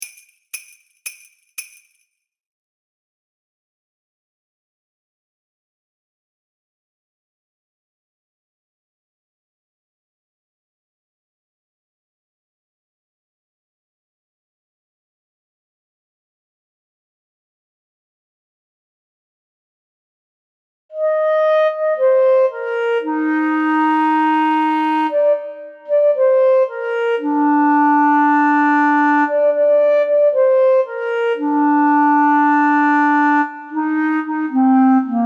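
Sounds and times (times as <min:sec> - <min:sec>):
B-flat clarinet melody: 0:21.0 - 0:35.2.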